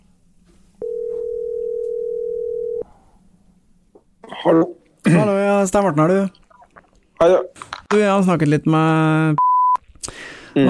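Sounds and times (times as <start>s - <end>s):
telephone dial tone while placing a call: 0.8s - 2.8s
speech: 4.4s - 6.4s, 7.2s - 9.4s.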